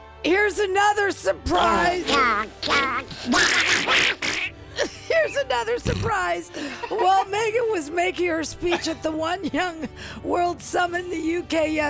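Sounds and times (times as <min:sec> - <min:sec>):
speech: 0:00.2 - 0:11.8
duck quacking sound effect: 0:02.6 - 0:04.5
laughter: 0:04.8 - 0:05.6, 0:06.6 - 0:07.7.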